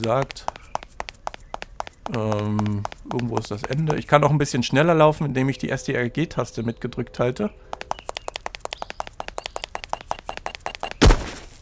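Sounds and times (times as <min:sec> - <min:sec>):
speech: 0:00.0 - 0:00.5, 0:02.1 - 0:07.8
quick evenly spaced footsteps of a video game character: 0:00.0 - 0:05.2, 0:07.6 - 0:11.6.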